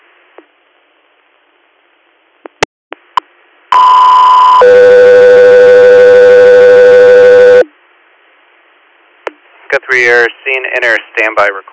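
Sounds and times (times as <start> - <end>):
radio dispatch alert tones for an air medical callout: 3.7 - 7.7
speech: 9.9 - 11.7.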